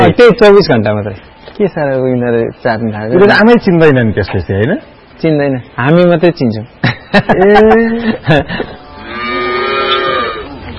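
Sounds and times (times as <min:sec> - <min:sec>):
speech: 0:00.2 - 0:09.2
laughter: 0:06.8 - 0:08.9
dairy cows mooing: 0:08.9 - 0:10.6.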